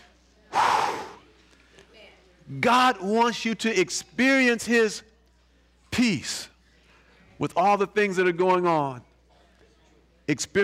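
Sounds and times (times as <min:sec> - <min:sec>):
deep breath during a sermon: 0:00.5 - 0:01.3
speech: 0:02.5 - 0:05.1, 0:06.0 - 0:06.5, 0:07.4 - 0:09.1, 0:10.3 - 0:10.6.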